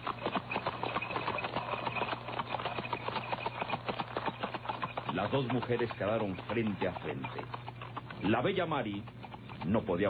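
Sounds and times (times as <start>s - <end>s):
horse hooves clopping: 0.0s - 10.0s
horse-drawn cart rattling: 0.0s - 10.0s
driver urging the horses on: 5.1s - 7.6s, 8.2s - 10.0s
speech: 5.2s - 10.0s.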